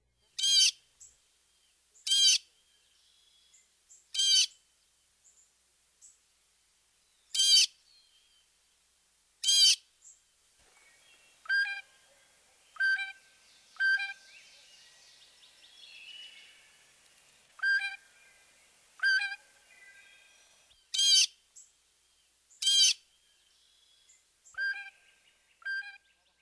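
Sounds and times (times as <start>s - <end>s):
faint background of other birds: 0.0s - 26.4s
blue jay calling: 0.4s - 1.1s, 2.0s - 2.5s, 4.0s - 4.6s, 7.3s - 7.8s, 9.4s - 9.9s, 10.9s - 17.0s, 17.6s - 21.4s, 22.6s - 23.1s.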